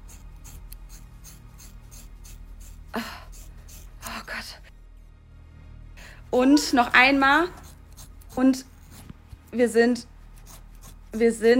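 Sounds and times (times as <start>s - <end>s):
scissors cutting through very thick long hair: 0.0s - 4.5s, 7.3s - 11.5s
speech: 6.4s - 7.6s, 8.4s - 8.7s, 9.5s - 10.1s, 11.1s - 11.5s.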